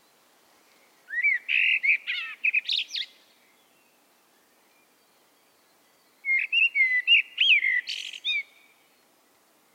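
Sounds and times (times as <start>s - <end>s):
Common blackbird Turdus merula singing fluted notes: 1.1s - 4.0s, 4.7s - 8.8s.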